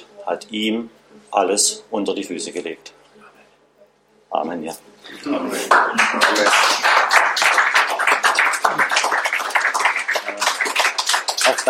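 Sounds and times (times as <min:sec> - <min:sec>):
speech: 0:00.2 - 0:03.0, 0:04.3 - 0:06.9
audience applause: 0:05.6 - 0:11.6.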